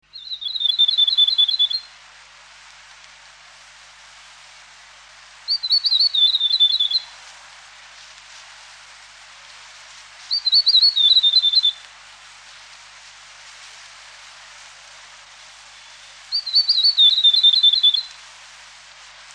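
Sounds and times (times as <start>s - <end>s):
tomtit bird calls: 0.2s - 1.9s, 5.5s - 7.1s, 10.3s - 11.8s, 15.8s - 18.1s.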